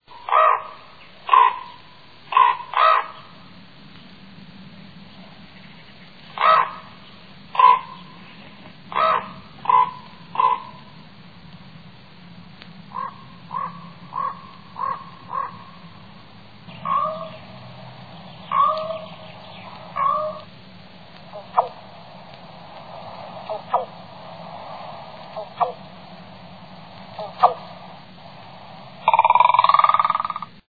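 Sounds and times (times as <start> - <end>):
raven: 0.0 - 3.6, 4.8 - 11.3, 12.8 - 30.6.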